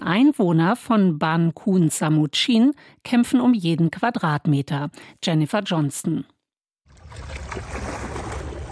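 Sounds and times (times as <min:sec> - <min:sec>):
speech: 0:00.1 - 0:06.4
sea waves striking a protective seawall at a fishing village near Bangkok: 0:06.9 - 0:08.6.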